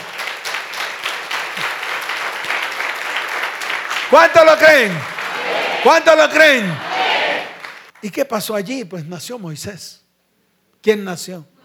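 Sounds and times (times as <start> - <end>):
crowd applauding: 0.0 - 8.0
speech: 4.1 - 5.1, 5.8 - 6.9, 8.0 - 10.0, 10.8 - 11.5.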